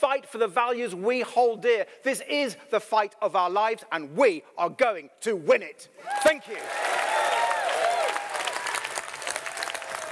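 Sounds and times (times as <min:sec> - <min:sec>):
speech: 0:00.1 - 0:07.2
people whooping: 0:06.1 - 0:10.1
large hall audience applauding after a speech: 0:06.2 - 0:10.1.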